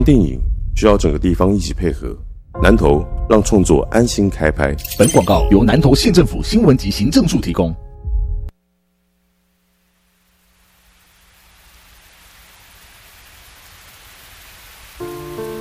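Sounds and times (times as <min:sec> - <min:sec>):
speech: 0:00.0 - 0:07.8
steady rain: 0:09.6 - 0:15.5.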